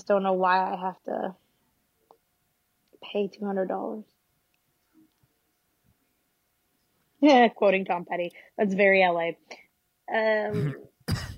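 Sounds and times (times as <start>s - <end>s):
speech: 0.0s - 1.4s, 3.0s - 4.2s, 7.2s - 11.2s
harsh coughs from someone who choked on coffee: 10.5s - 11.3s
strained voiced throat sound: 10.5s - 11.3s.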